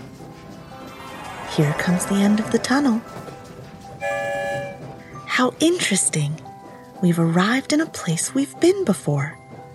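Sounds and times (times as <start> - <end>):
train rumbling along: 0.0 - 6.9
speech: 1.6 - 3.2, 5.4 - 9.4
loud train horn blast with stacked harmonic tones: 4.0 - 5.0.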